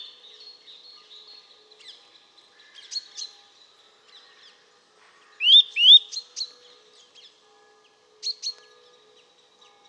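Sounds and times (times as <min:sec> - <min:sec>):
Eurasian nuthatch Sitta europaea repeating rising whistled notes: 0:05.4 - 0:06.0.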